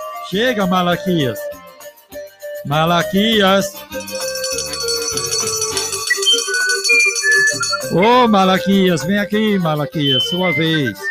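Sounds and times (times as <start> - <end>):
speech: 0.3 - 1.6, 2.6 - 4.1, 7.5 - 11.0
doorbell ringing ding-dong at a house door: 4.0 - 8.1.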